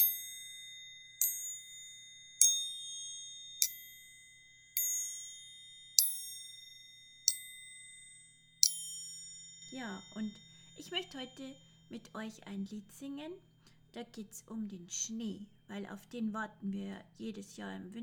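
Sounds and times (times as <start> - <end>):
triangle struck, bright metallic ding: 0.0 - 12.2
speech: 9.8 - 18.0.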